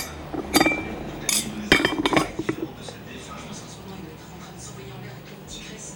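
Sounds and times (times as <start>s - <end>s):
dishes and cutlery clinking as a table is cleared: 0.0s - 3.0s.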